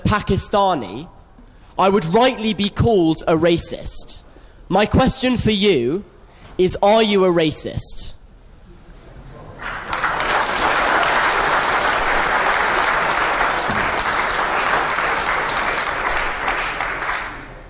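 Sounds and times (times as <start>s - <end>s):
speech: 0.1s - 1.2s, 1.8s - 8.2s
large audience applause: 9.6s - 17.6s.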